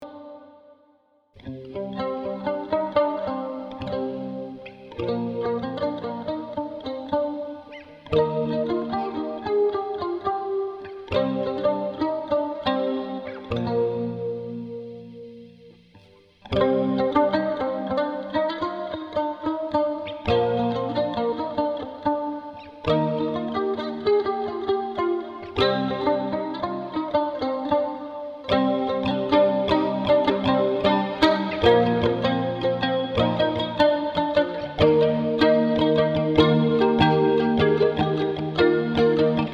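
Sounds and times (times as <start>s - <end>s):
clean electric balalaika: 1.4s - 39.5s.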